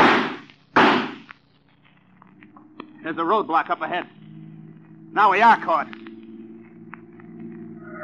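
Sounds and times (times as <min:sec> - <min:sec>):
pistol shots fired from a car: 0:00.0 - 0:01.3
speech: 0:03.0 - 0:04.2, 0:05.2 - 0:06.0.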